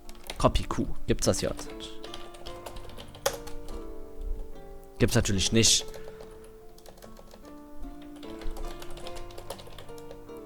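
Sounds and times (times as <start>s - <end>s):
typing on a computer keyboard: 0.0s - 0.5s, 1.5s - 4.5s, 5.8s - 10.4s
steady tonal background: 0.0s - 10.4s
speech: 0.4s - 2.0s, 5.0s - 6.0s.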